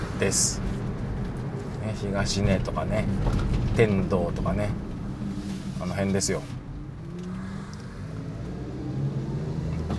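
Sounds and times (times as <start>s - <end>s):
continuous road noise: 0.0s - 9.9s
speech: 0.2s - 0.7s, 1.9s - 4.9s, 5.8s - 6.6s
scooter-like small motor vehicle engine droning: 6.8s - 9.9s.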